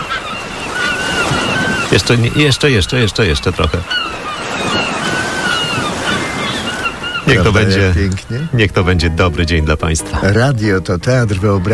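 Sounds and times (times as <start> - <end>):
thin high bird cries: 0.0 - 2.5, 3.8 - 7.5
surf of sea waves washing on the shore: 0.0 - 11.7
speech: 1.9 - 4.3, 7.3 - 11.7.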